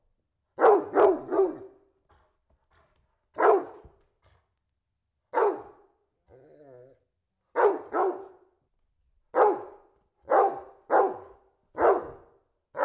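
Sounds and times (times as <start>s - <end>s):
domestic dog barking indoors: 0.6s - 1.8s, 3.3s - 4.0s, 5.3s - 5.9s, 7.5s - 8.5s, 9.3s - 12.8s
domestic dog whining: 6.3s - 7.0s.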